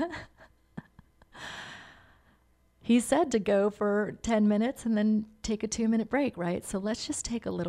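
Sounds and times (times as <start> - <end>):
speech: 0.0 - 0.3, 2.9 - 7.6
person taking a deep breath: 1.4 - 2.4.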